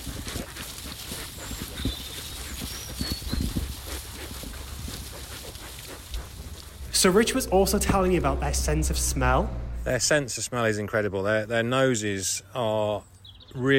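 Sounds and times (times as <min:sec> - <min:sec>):
piglets snuffling and rooting around their pen: 0:00.0 - 0:08.9
rustling: 0:00.0 - 0:09.8
shuffling movement: 0:00.0 - 0:10.0
speech: 0:07.0 - 0:13.7.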